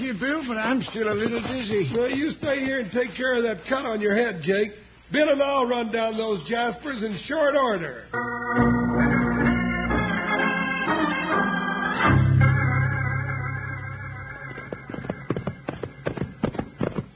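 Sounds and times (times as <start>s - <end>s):
horses galloping: 0.0s - 3.6s, 14.4s - 17.1s
speech: 0.1s - 8.9s
orchestral music: 8.2s - 14.4s.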